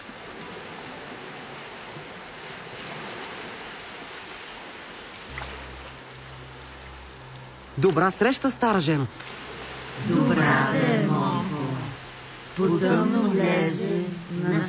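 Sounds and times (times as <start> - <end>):
sea surf washing onto a shore: 0.0 - 14.6
low droning hum: 5.3 - 12.8
speech: 7.8 - 9.3, 10.0 - 10.8, 12.6 - 14.6.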